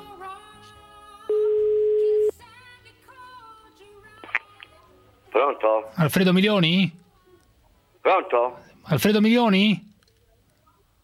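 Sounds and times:
radio musical bed: 0.0 - 7.4
steady mid-pitched telephone line tone: 1.3 - 2.3
speech: 5.4 - 7.0, 8.0 - 9.9.

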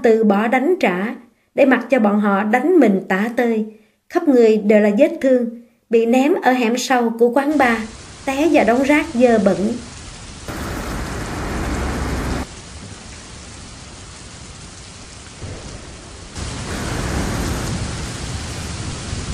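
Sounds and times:
speech: 0.0 - 9.9
heavy rain pouring down: 7.5 - 19.3
rolling thunder: 7.6 - 19.3.

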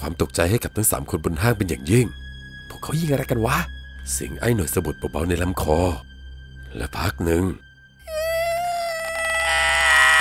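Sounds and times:
speech: 0.0 - 6.1, 6.8 - 7.7
shrill eerie scream echoing through a forest: 8.1 - 10.1.

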